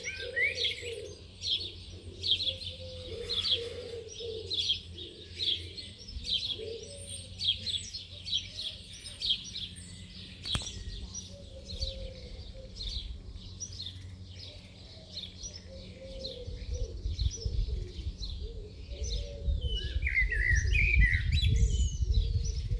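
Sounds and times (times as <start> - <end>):
pigeon or dove cooing softly: 0.0 - 9.4, 10.5 - 13.4, 14.2 - 22.7
UK garden birds singing a morning chorus: 0.0 - 22.7.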